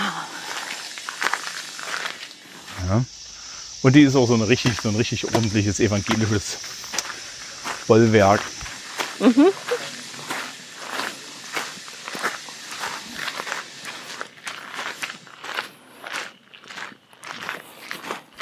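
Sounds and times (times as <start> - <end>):
footsteps walking past an old disused church: 0.2 - 3.3, 4.2 - 18.3
speech: 2.9 - 3.2, 3.8 - 6.7, 7.9 - 8.6, 9.2 - 9.7.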